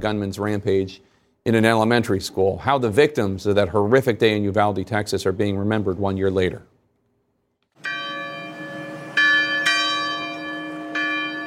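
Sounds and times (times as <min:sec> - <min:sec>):
speech: 0:00.0 - 0:06.7
church bells ringing: 0:07.8 - 0:11.4.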